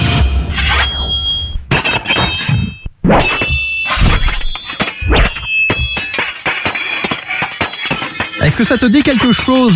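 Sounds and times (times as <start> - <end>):
metal swords clashing: 0.5 - 9.7
speech: 8.6 - 9.7.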